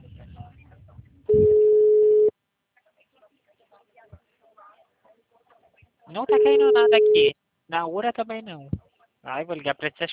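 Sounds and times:
faint talk: 0:00.0 - 0:10.1
telephone line tone as a call is placed: 0:01.3 - 0:02.3, 0:06.3 - 0:07.3
speech: 0:06.2 - 0:10.1.

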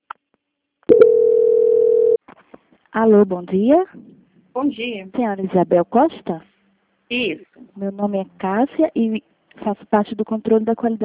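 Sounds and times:
steady telephone tone while a bank call is transferred: 0:00.9 - 0:02.2
speech: 0:03.0 - 0:06.5, 0:07.1 - 0:11.0.

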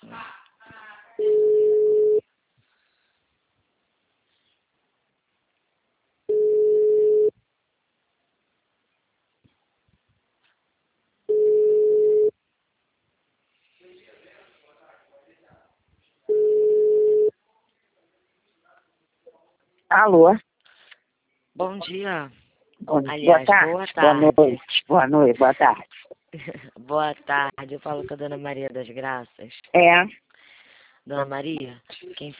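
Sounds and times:
telephone ringing tone while placing a phone call: 0:01.2 - 0:02.2, 0:06.3 - 0:07.3, 0:11.3 - 0:12.3, 0:16.3 - 0:17.3
speech: 0:19.9 - 0:20.4, 0:21.6 - 0:30.2, 0:31.0 - 0:32.3.

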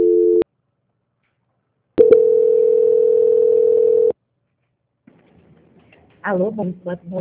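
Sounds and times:
long steady telephone tone during a call transfer: 0:00.0 - 0:00.5, 0:02.0 - 0:04.2
telephone beep during a call transfer: 0:02.0 - 0:04.2
speech: 0:06.3 - 0:07.1.

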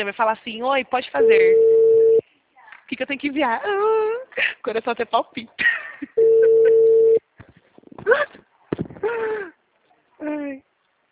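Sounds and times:
speech: 0:00.0 - 0:01.8, 0:02.9 - 0:06.3, 0:09.1 - 0:09.6, 0:10.2 - 0:11.1
phone ringback tone while calling a client: 0:01.2 - 0:02.2, 0:06.2 - 0:07.2.

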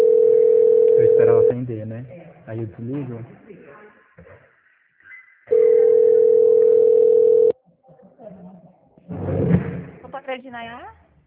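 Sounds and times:
telephone line beep during a call transfer: 0:00.0 - 0:01.6, 0:05.5 - 0:07.6
speech: 0:01.6 - 0:03.6, 0:10.2 - 0:11.0.

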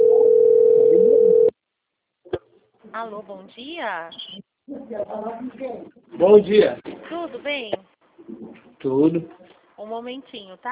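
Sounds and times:
telephone ringing tone on an outgoing call: 0:00.0 - 0:01.5
speech: 0:03.0 - 0:07.8, 0:08.8 - 0:10.6.

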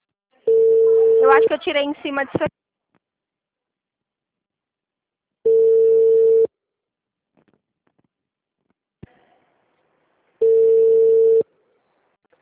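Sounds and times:
telephone busy tone after a dropped call: 0:00.5 - 0:01.5, 0:05.5 - 0:06.5, 0:10.4 - 0:11.4
speech: 0:01.3 - 0:02.6.

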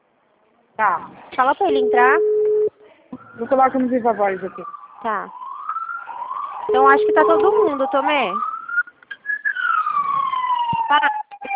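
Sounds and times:
speech: 0:00.8 - 0:02.3, 0:03.4 - 0:05.4, 0:06.7 - 0:08.5
brief voice-like fragments: 0:01.6 - 0:02.6, 0:06.7 - 0:07.9
ambulance siren wailing past: 0:03.2 - 0:11.5.

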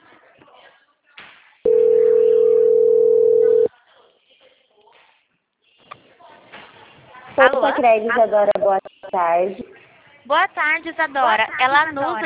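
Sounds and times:
steady single-pitched telephone tone during call transfer: 0:01.7 - 0:03.7
speech: 0:07.4 - 0:09.7, 0:10.3 - 0:12.2.

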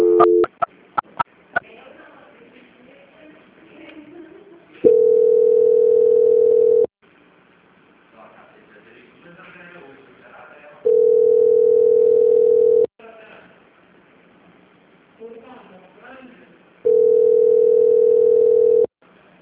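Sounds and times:
telephone line tone while a call transfer is tried: 0:00.0 - 0:00.6, 0:04.9 - 0:06.9, 0:10.9 - 0:12.9, 0:16.8 - 0:18.9.

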